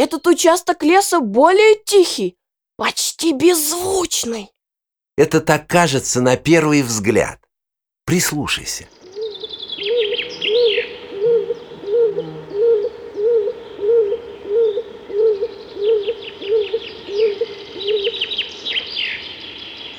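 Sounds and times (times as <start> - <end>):
speech: 0.0 - 4.6, 5.2 - 7.4, 8.1 - 9.0
stock dove cooing in a forest: 8.9 - 18.8
small birds chirping: 8.9 - 19.9.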